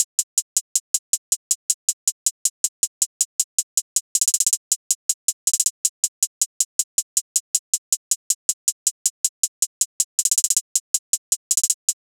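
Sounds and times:
hi-hat loop: 0:00.0 - 0:12.0.

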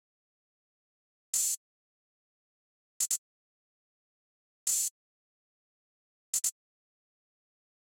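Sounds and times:
trap drum loop with open hi-hat: 0:01.4 - 0:01.6, 0:04.7 - 0:04.9, 0:06.4 - 0:06.6.

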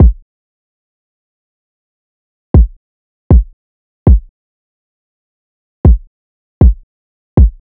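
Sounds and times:
hip hop kick drum loop: 0:00.0 - 0:00.2, 0:02.6 - 0:04.3, 0:05.8 - 0:06.8, 0:07.4 - 0:07.6.

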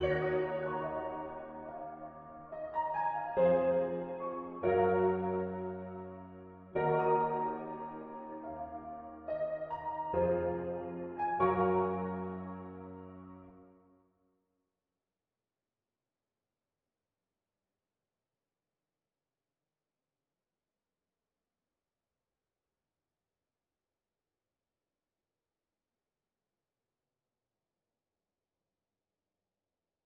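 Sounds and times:
RnB piano melody loop in A sharp minor: 0:00.0 - 0:13.5.

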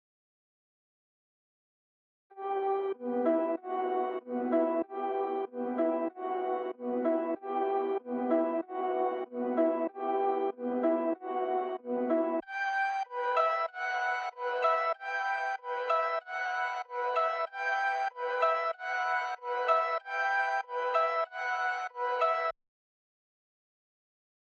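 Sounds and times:
95 BPM E minor halftime keys melody loop: 0:03.1 - 0:22.5.

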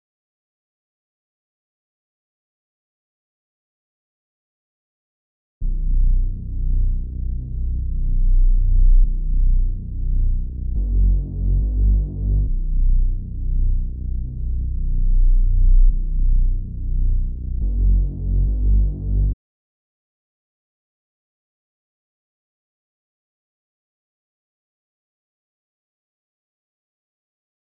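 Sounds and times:
bass melody loop: 0:05.6 - 0:19.4.

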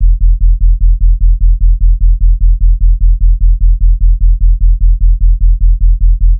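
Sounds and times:
sub bass loop in E: 0:00.0 - 0:06.3.

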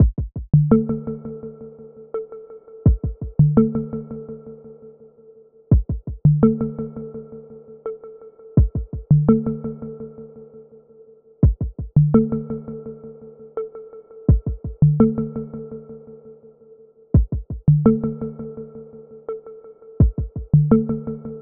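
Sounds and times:
D minor percussion loop: 0:00.0 - 0:00.7, 0:02.8 - 0:03.6, 0:05.7 - 0:06.4, 0:08.6 - 0:09.4, 0:11.4 - 0:12.2, 0:14.3 - 0:15.1, 0:17.2 - 0:18.0, 0:20.0 - 0:20.8.

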